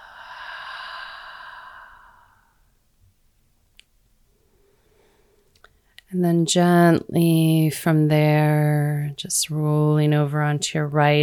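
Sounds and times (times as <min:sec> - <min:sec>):
deep slow breath during a guided relaxation practice: 0:00.0 - 0:02.8
speech: 0:06.1 - 0:11.2.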